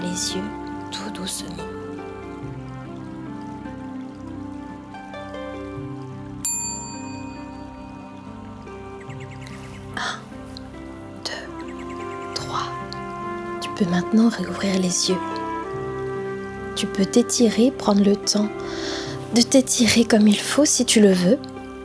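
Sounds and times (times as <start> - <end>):
soft sustained music bed: 0.0 - 21.8
speech: 0.2 - 1.8, 13.8 - 15.4, 16.8 - 21.6
small bell chiming at the end of a guided meditation: 6.4 - 8.2.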